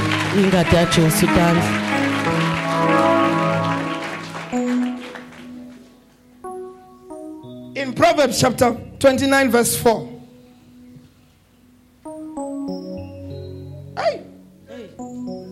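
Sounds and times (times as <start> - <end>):
crowd clapping: 0.0 - 6.3
sustained keyboard chords: 0.0 - 15.4
speech: 0.4 - 2.1, 8.2 - 10.1.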